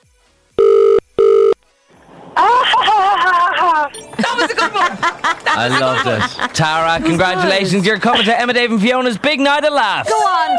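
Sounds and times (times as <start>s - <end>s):
telephone ringing in electronic bursts: 0.6s - 1.6s
laughter: 2.4s - 9.2s
speech: 4.4s - 10.5s.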